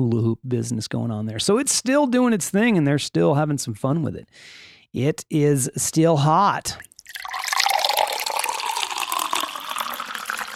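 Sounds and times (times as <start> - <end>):
speech: 0.0 - 6.9
water pouring from a water cooler into a container: 6.8 - 10.5.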